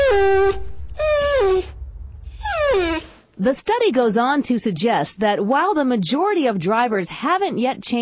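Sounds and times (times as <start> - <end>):
female dog in heat whining: 0.0 - 1.7, 2.3 - 3.1
speech: 3.4 - 8.0.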